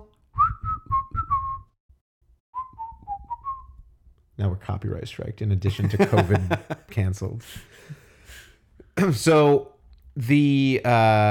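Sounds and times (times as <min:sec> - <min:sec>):
person whistling a short melody: 0:00.0 - 0:01.8, 0:02.6 - 0:03.8
speech: 0:04.4 - 0:08.0, 0:09.0 - 0:11.2
laughter: 0:05.7 - 0:06.9.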